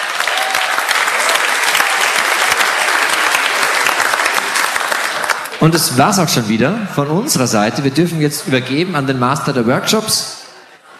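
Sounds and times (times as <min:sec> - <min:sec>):
audience crowd clapping steadily: 0:00.0 - 0:06.3
speech: 0:05.6 - 0:10.4.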